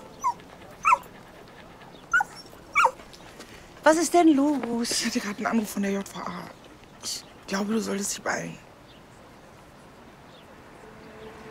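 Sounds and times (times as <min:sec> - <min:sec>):
dog whimpering: 0:00.0 - 0:03.0
speech: 0:03.9 - 0:08.7.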